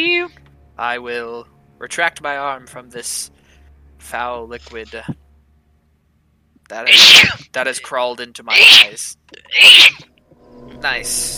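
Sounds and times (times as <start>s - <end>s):
speech: 0.0s - 3.4s, 4.0s - 5.2s, 6.7s - 11.3s
person sneezing: 6.9s - 7.4s, 8.5s - 10.0s.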